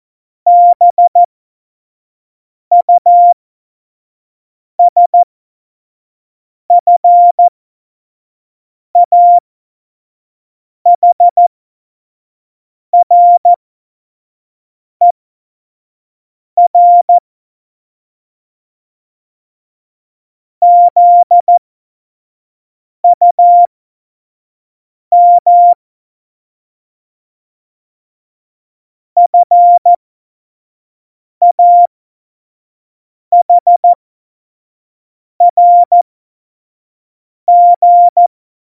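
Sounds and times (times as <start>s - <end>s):
morse code beeps at tempo 25: 0.5s - 1.3s, 2.7s - 3.4s, 4.8s - 5.2s, 6.7s - 7.5s, 9.0s - 9.4s, 11.0s - 11.4s, 13.0s - 13.6s, 16.7s - 17.2s, 20.6s - 21.6s, 23.1s - 23.7s, 25.1s - 25.8s, 29.2s - 30.0s, 31.4s - 31.9s, 33.3s - 34.0s, 35.4s - 36.0s, 37.5s - 38.3s.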